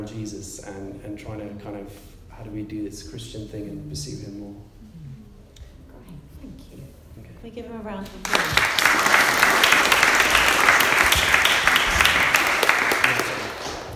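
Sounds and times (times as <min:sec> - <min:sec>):
speech: 0:00.0 - 0:04.9, 0:07.4 - 0:09.0
audience applause: 0:08.2 - 0:13.9.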